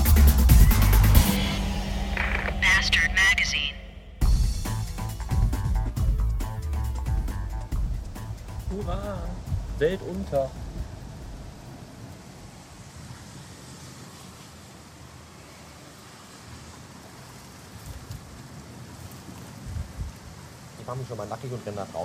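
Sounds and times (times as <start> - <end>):
heavy low rumble in a thunderstorm: 0.0 - 12.5
dense rain pouring during a thunderstorm: 0.0 - 22.0
speech: 9.8 - 10.6, 20.9 - 22.0.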